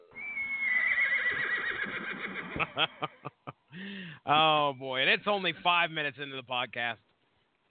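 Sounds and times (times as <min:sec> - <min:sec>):
horse neighing: 0:00.1 - 0:02.6
speech: 0:02.6 - 0:03.2, 0:03.8 - 0:07.1.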